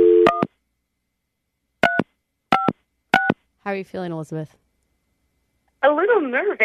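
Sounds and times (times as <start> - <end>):
touch-tone beeps: 0.0 - 0.5, 1.8 - 3.4
speech: 3.6 - 4.6, 5.8 - 6.6.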